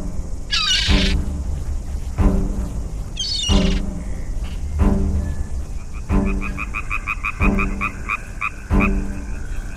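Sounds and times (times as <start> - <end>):
faint high-pitched chirping trills: 0.0 - 9.7
frog croaking with deep buzzy croaks: 0.5 - 1.2, 3.2 - 4.3, 5.8 - 9.7.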